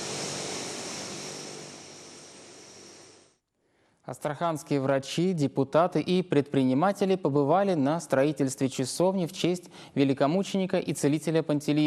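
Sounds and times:
strategic bomber heavy engines roaring while taxiing: 0.0 - 3.1
speech: 4.1 - 11.8.

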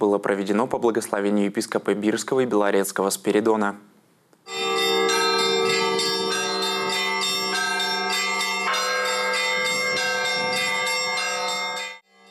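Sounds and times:
speech: 0.1 - 4.6
church bells ringing an Easter peal: 4.5 - 12.3.

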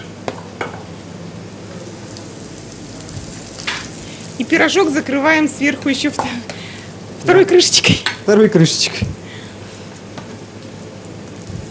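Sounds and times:
potato pancakes sizzling in a hot frying pan on a stovetop: 1.6 - 5.4, 9.6 - 11.6
frying oil popping and crackling: 2.0 - 4.7, 10.0 - 11.6
speech: 4.4 - 6.6, 7.2 - 9.2.

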